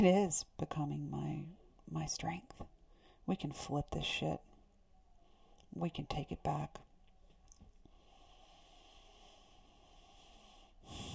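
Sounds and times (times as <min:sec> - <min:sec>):
speech: 0:00.0 - 0:02.7, 0:03.3 - 0:04.5, 0:05.7 - 0:06.8
slow deep breath: 0:07.8 - 0:11.1.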